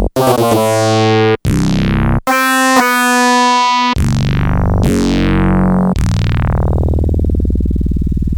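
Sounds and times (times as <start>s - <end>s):
Yamaha DX100 synthesizer factory patches: 0.1s - 8.2s.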